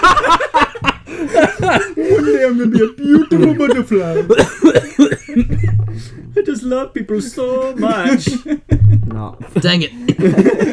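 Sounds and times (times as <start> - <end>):
laughter: 0.0 - 10.7
harsh coughs: 1.2 - 6.0
speech: 2.5 - 5.2, 6.6 - 10.7.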